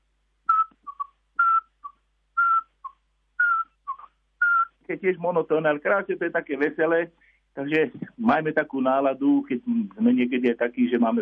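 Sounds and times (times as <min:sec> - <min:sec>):
Eurasian pygmy owl whistling call: 0:00.5 - 0:04.7
speech: 0:04.9 - 0:11.1.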